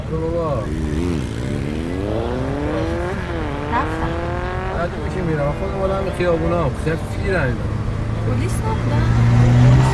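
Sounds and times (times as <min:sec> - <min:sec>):
speech: 0:00.1 - 0:01.0, 0:05.2 - 0:09.9
motorcycle engine revving: 0:00.2 - 0:06.0, 0:09.0 - 0:09.9.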